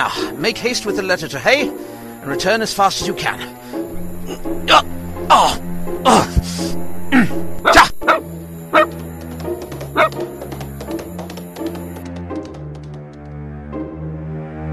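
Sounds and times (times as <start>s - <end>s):
speech: 0.0s - 6.8s
dog barking: 7.6s - 9.0s, 10.0s - 10.2s.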